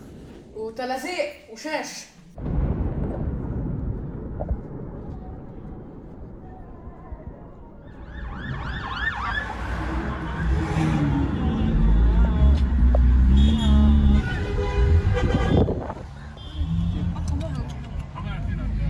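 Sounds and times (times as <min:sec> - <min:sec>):
speech: 0:00.7 - 0:02.5
low rumble of traffic: 0:02.4 - 0:18.8
ambulance siren wailing: 0:07.9 - 0:12.3.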